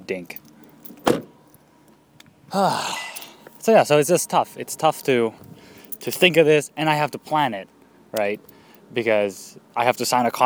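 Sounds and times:
speech: 0.1s - 0.4s, 2.5s - 3.0s, 3.6s - 10.4s
car door latch clunk: 0.9s - 1.3s.

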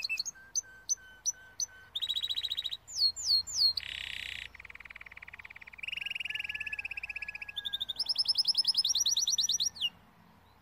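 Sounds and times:
Timbrado canary trilling: 0.0s - 10.0s.

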